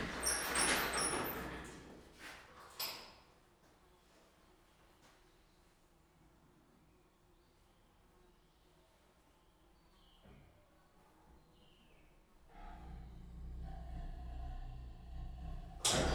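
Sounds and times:
cage doors opening at a zoo: 0.1 - 1.8, 12.6 - 16.1
Siberian tigers: 12.5 - 16.1.

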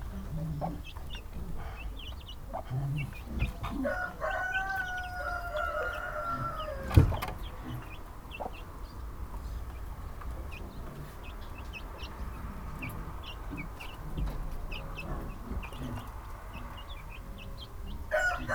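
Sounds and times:
low rumbling background noise: 0.0 - 18.5
rooster crowing: 3.8 - 7.2, 18.1 - 18.5.

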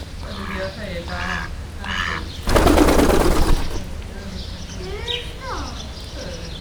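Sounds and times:
mallard taking off from the ground into a tree: 2.1 - 4.6.

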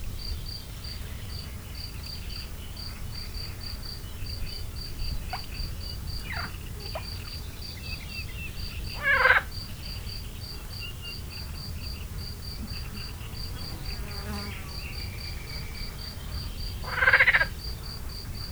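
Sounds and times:
field cricket chirping in nature: 0.0 - 18.4
edible frog croaking in nature: 9.0 - 9.6, 16.8 - 17.6
insect buzzing in nature: 12.4 - 16.6.

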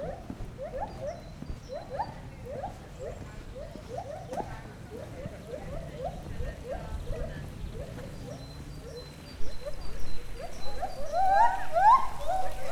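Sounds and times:
captive white-handed gibbon hooting at a zoo: 0.0 - 8.4, 11.0 - 12.6.

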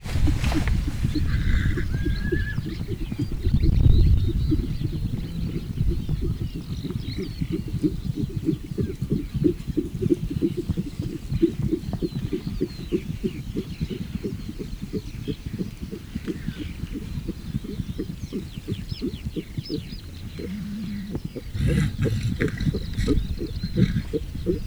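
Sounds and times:
wild mare protecting her one-day-old foal in Hortobágy National Park: 0.0 - 24.6.

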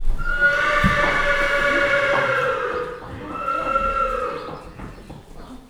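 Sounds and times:
horses neighing while being led out of a stable: 0.0 - 5.3.

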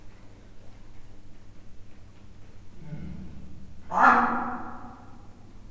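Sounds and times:
leopard low short grunt in a zoo: 2.7 - 5.5.

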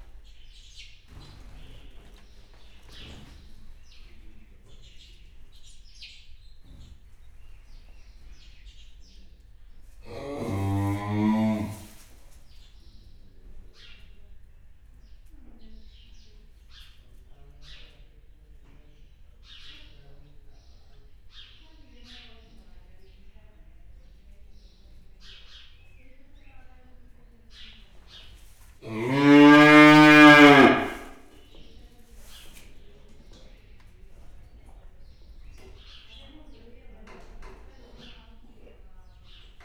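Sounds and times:
5-month-old aurochs bull in Hortobágy National Park: 10.0 - 12.0, 28.8 - 31.3.

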